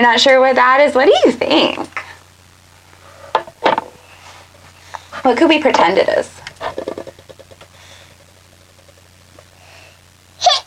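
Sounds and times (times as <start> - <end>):
speech: 0.0 - 2.0, 5.2 - 6.9
low steady hum: 0.0 - 10.6
sneeze: 10.4 - 10.6.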